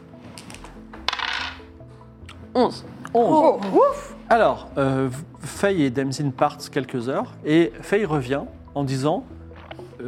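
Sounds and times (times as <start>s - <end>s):
dice tumbling onto a hard surface: 0.3s - 1.6s
speech: 2.6s - 9.4s.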